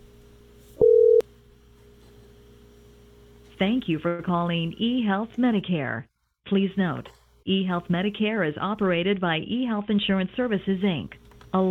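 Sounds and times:
low hum: 0.0s - 11.7s
telephone busy tone: 0.8s - 1.2s
speech: 3.6s - 11.7s.

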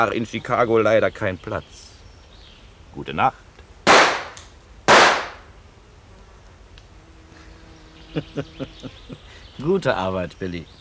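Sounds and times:
speech: 0.0s - 1.9s, 2.9s - 3.4s, 8.2s - 10.7s
gunshots: 3.9s - 5.4s
laughter: 7.5s - 9.6s.

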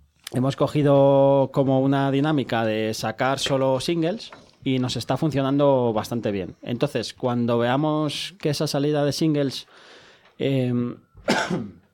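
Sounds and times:
speech: 0.3s - 11.8s
person coughing: 11.2s - 11.9s.

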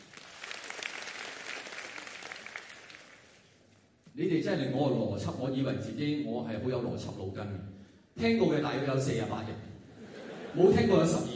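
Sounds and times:
audience at a live show clapping: 0.0s - 3.7s
speech: 4.2s - 9.7s, 10.5s - 11.3s
laughter: 9.9s - 11.3s.

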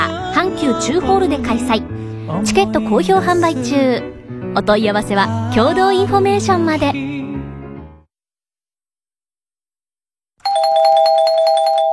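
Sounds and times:
speech: 0.4s - 7.0s
electronic doorbell-style chime marking a quiz deadline: 10.4s - 11.9s.

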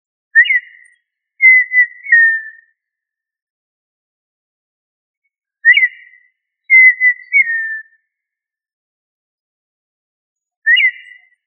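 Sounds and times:
quail whistling call: 0.4s - 2.6s, 5.6s - 7.9s, 10.7s - 11.3s.

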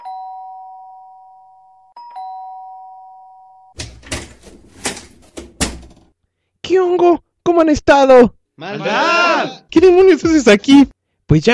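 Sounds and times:
sustained electronic doorbell chimes: 0.0s - 3.8s
loud sharp clattering knocks and thumps: 3.8s - 6.1s
speech: 6.7s - 11.5s.

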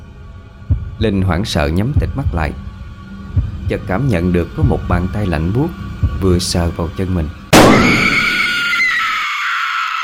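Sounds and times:
speech: 1.0s - 2.7s, 3.7s - 8.1s
girl screaming in fright: 7.8s - 10.0s.

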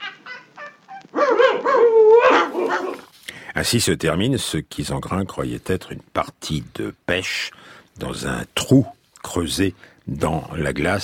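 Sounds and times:
hunters' dog barking and yelping: 0.0s - 3.1s
speech: 3.6s - 11.0s.

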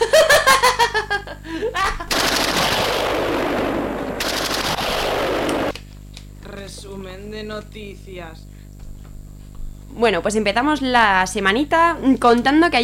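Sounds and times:
laughter: 0.0s - 2.1s
gunfire bombardment sound effect: 2.1s - 5.8s
speech: 7.6s - 8.5s, 10.0s - 12.8s.

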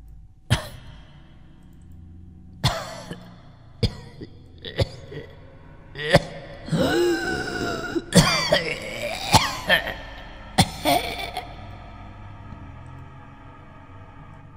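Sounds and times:
strained moaning vocal sounds: 0.0s - 14.5s
painful dry coughing: 0.5s - 1.2s, 2.6s - 5.4s, 6.0s - 11.8s.

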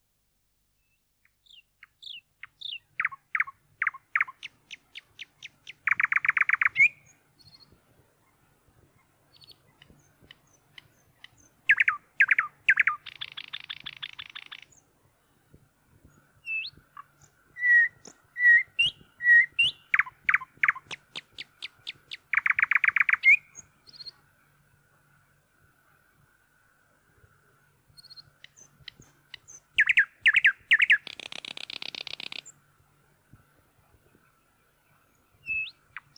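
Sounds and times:
nightingale singing: 0.8s - 8.4s, 9.3s - 14.9s, 16.1s - 24.2s, 28.0s - 32.6s, 35.2s - 36.1s
faint calls: 0.8s - 36.1s.

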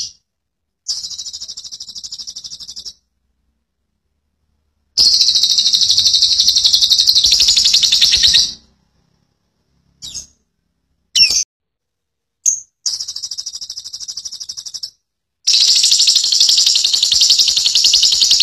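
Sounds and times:
lovebird giving squeaky chirps and long chattering trill: 0.9s - 3.0s, 5.0s - 8.6s, 10.0s - 10.4s, 12.4s - 18.4s.

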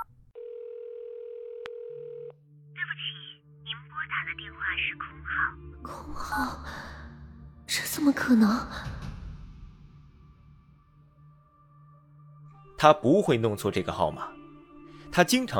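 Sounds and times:
steady single-pitch telephone tone after dialling a call: 0.0s - 2.4s
speech: 2.9s - 7.0s, 7.7s - 9.1s, 12.8s - 14.4s, 15.2s - 15.5s.

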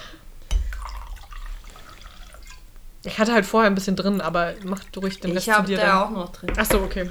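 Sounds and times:
drink poured from a labelled bottle into glasses: 0.0s - 7.0s
labelled bottle knock: 0.4s - 1.7s, 4.6s - 7.0s
speech: 3.0s - 7.0s.

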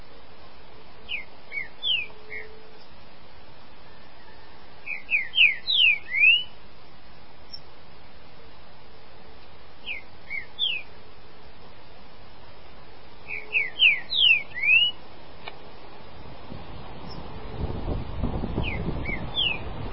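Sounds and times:
green-winged saltator song: 1.1s - 2.6s, 3.9s - 6.6s, 9.8s - 10.9s, 13.2s - 15.0s, 18.6s - 19.7s.

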